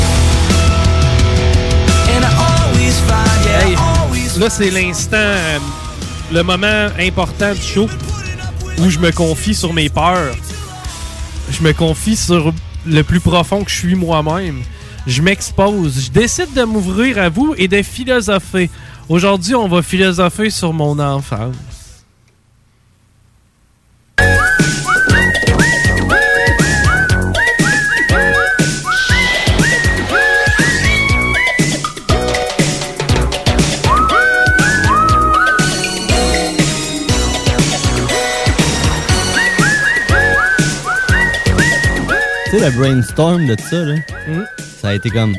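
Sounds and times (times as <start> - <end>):
full loud backing music: 0.0 - 15.9, 24.2 - 45.3
speech: 4.4 - 8.2, 8.8 - 10.5, 11.5 - 21.7, 42.6 - 45.3
person whistling a melodic tune: 24.2 - 32.0, 33.7 - 37.6, 38.4 - 45.3.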